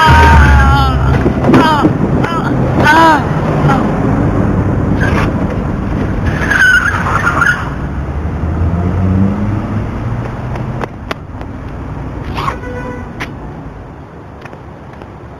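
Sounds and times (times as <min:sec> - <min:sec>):
car engine roaring: 0:00.0 - 0:12.4
tire screech: 0:04.9 - 0:09.6, 0:12.2 - 0:13.1.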